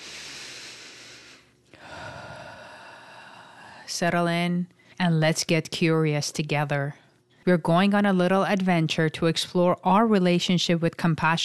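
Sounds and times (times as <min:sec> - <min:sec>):
slow deep breath: 0:00.0 - 0:03.9
speech: 0:03.9 - 0:11.4.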